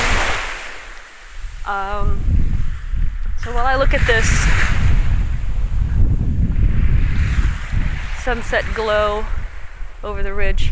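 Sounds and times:
gusty wind on the microphone: 0:00.0 - 0:10.7
ocean waves breaking on shore at sunset: 0:00.0 - 0:10.7
speech: 0:01.7 - 0:02.3, 0:03.4 - 0:04.8, 0:08.2 - 0:09.4, 0:10.0 - 0:10.7.

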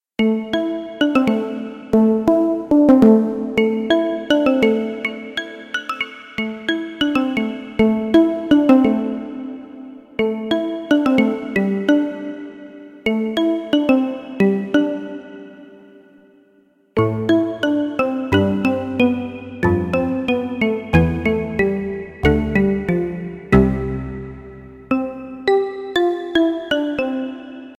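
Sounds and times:
synth mallet keys: 0:00.2 - 0:15.6, 0:17.0 - 0:27.7.

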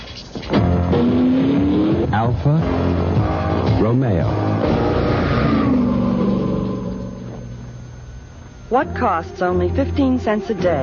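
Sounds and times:
Alfa Romeo sports car aluminum fuel-injected engine revving: 0:00.6 - 0:07.7
speech: 0:02.2 - 0:03.1, 0:03.9 - 0:04.8, 0:08.7 - 0:10.8.

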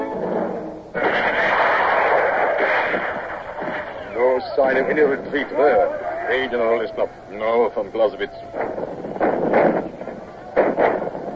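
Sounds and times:
cannon fire: 0:00.2 - 0:05.7, 0:08.5 - 0:11.3
speech: 0:04.6 - 0:08.9.

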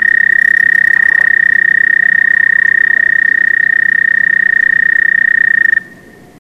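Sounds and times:
American toad trill: 0:00.0 - 0:05.9.

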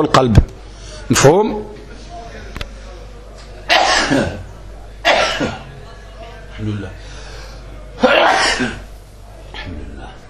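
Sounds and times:
speech: 0:00.0 - 0:00.5, 0:01.1 - 0:01.8, 0:04.1 - 0:04.4, 0:06.6 - 0:07.1, 0:08.6 - 0:08.8
person sneezing: 0:03.7 - 0:04.4, 0:08.0 - 0:08.8.

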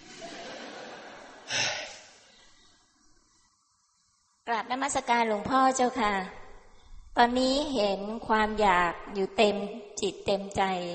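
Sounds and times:
laughter: 0:00.0 - 0:01.5
soft breathy noise: 0:01.4 - 0:04.4, 0:06.5 - 0:07.2
man inhaling sharply close to the microphone: 0:01.5 - 0:02.8
speech: 0:04.5 - 0:06.4, 0:07.2 - 0:10.9.

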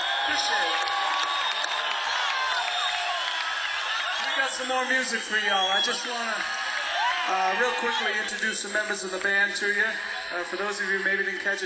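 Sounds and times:
scattered whoops and shouts from concert crowd: 0:00.0 - 0:08.5
large live concert crowd cheering at night in San Diego: 0:00.0 - 0:11.6
speech: 0:00.3 - 0:00.8, 0:04.6 - 0:06.6, 0:07.2 - 0:11.6.

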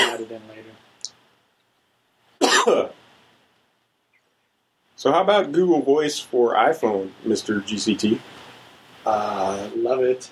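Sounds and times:
person coughing: 0:00.0 - 0:00.3, 0:02.4 - 0:02.9
speech: 0:00.2 - 0:00.9, 0:02.6 - 0:03.0, 0:05.0 - 0:08.4, 0:09.0 - 0:10.2.

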